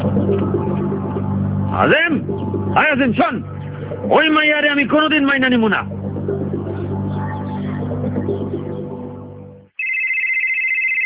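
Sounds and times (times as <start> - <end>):
dense low humming backdrop: 0.0 - 4.2, 5.8 - 9.7
speech: 1.7 - 6.4
mobile phone ringtone: 9.7 - 11.0.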